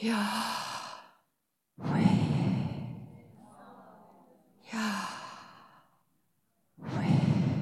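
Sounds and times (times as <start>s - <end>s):
person taking slow deep breaths in and out: 0.0s - 3.4s, 4.7s - 6.1s, 6.8s - 7.6s.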